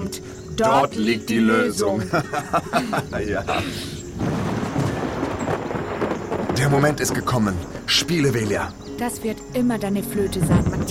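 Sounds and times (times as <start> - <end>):
speech: 0.1 - 4.0, 6.6 - 10.8
laughter: 1.8 - 4.0
thunder from an approaching thunderstorm: 4.1 - 7.9, 10.3 - 10.8.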